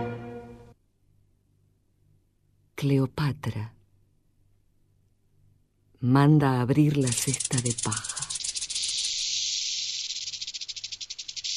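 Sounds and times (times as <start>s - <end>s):
speech: 2.8s - 3.8s, 6.0s - 8.2s
rattlesnake rattling: 6.9s - 11.5s.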